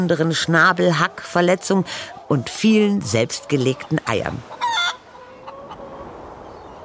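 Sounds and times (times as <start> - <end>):
speech: 0.0 - 4.6
chickens clucking: 0.0 - 6.8.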